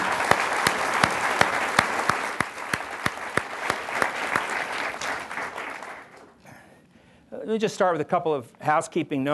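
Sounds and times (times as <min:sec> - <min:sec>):
audience clapping: 0:00.0 - 0:06.4
speech: 0:07.5 - 0:09.3.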